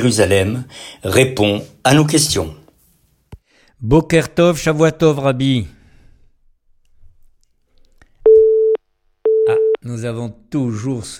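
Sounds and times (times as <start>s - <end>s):
speech: 0.0s - 2.6s, 3.8s - 5.8s, 9.8s - 11.1s
telephone line tone on a call to a mobile phone in Israel: 8.3s - 9.8s.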